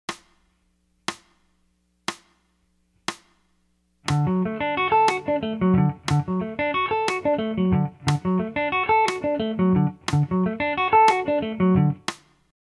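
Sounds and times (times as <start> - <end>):
arpeggiated chords: 4.1 - 12.0.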